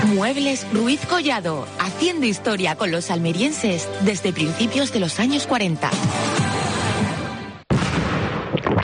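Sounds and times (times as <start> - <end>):
speech: 0.2 - 6.2
rumbling blast: 7.7 - 8.7
loud dense explosion sound effect: 7.7 - 8.8.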